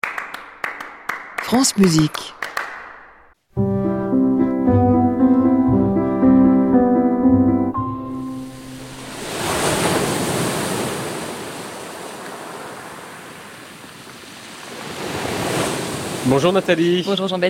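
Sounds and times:
speech: 1.5 - 2.4, 16.3 - 17.4
short musical phrase: 3.6 - 9.2
surf washing in and receding at Antibes on the Côte d'Azur: 8.3 - 17.4.

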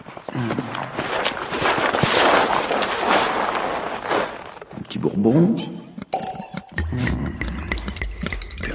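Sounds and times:
pig hooves trotting: 0.0 - 8.7
speech: 0.4 - 1.7, 4.9 - 5.9.

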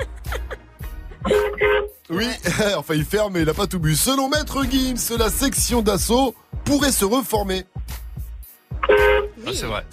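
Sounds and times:
laughter: 0.0 - 1.5
horn honking: 1.3 - 2.0, 8.8 - 9.4
speech: 2.1 - 7.8, 9.5 - 9.9.

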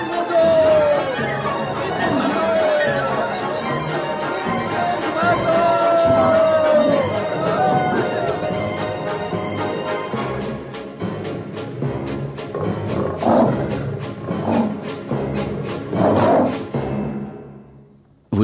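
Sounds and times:
laughter: 0.0 - 9.8
waltz music: 0.0 - 18.2
big cat roars as film sound effects: 1.9 - 3.1, 6.0 - 8.7, 12.4 - 16.6.

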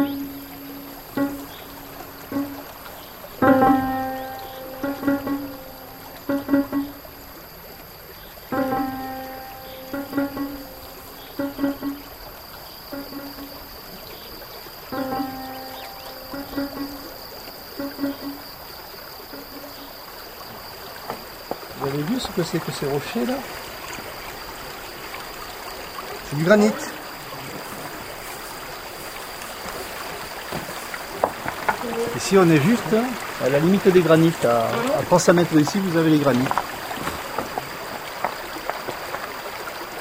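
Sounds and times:
short tonal ringing knocks: 0.0 - 7.4, 8.5 - 13.9, 14.8 - 18.6, 19.2 - 19.8
stream flowing across a dried ancient lake basin on a plateau in France: 0.0 - 40.0
speech: 22.5 - 23.7, 26.3 - 27.0, 32.3 - 36.7.

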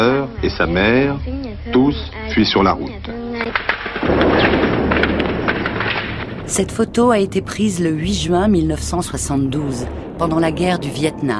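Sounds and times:
speech: 0.0 - 4.6, 6.5 - 11.3
sharp crackling pops: 3.0 - 7.6
napalm bomb explosion: 3.5 - 11.3.

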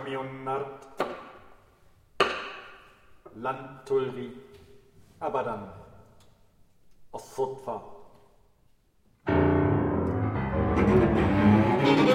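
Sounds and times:
speech: 0.1 - 0.9, 3.4 - 4.6, 5.2 - 5.8, 7.1 - 7.9
contemporary film score with resonant percussive strikes: 9.3 - 12.1.

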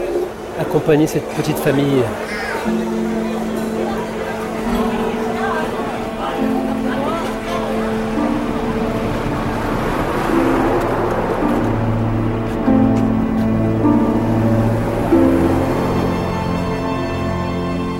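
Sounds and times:
moving bus interior rumble with engine and road noise: 0.0 - 17.9
speech: 0.6 - 5.0
families singing long sustained notes at the back of the bus: 2.6 - 16.7.

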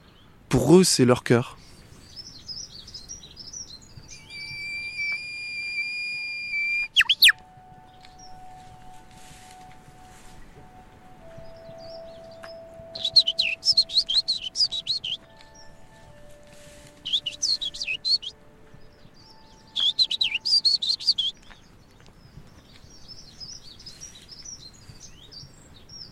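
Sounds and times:
speech: 0.5 - 1.6
bird singing overhead: 1.6 - 26.0
faint steady tones: 3.7 - 21.8
soft rustle: 7.2 - 13.4, 15.2 - 19.2, 21.4 - 25.8.

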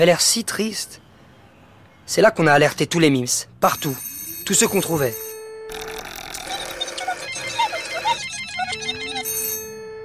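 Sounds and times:
speech: 0.0 - 1.0, 2.1 - 5.8
telephone ringing unanswered with warbling electronic tone: 3.8 - 10.0
telephone steady beeping pattern: 3.8 - 10.0.

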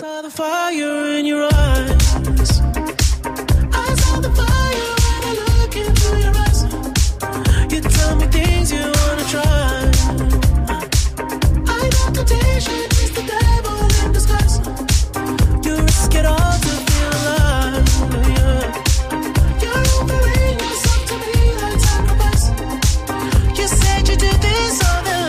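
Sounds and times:
speech: 0.0 - 2.9
pop song played on radio with synth, bass and drums: 0.0 - 25.2.

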